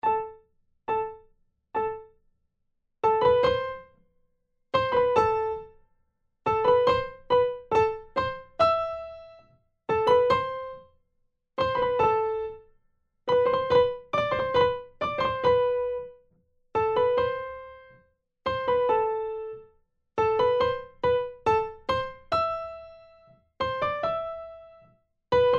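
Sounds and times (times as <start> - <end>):
primo part of four-hand piano practice piece playback: 0.0 - 1.2, 1.8 - 2.1, 3.0 - 4.0, 4.8 - 5.7, 6.5 - 10.9, 11.6 - 12.6, 13.3 - 16.2, 16.8 - 19.6, 20.2 - 25.5.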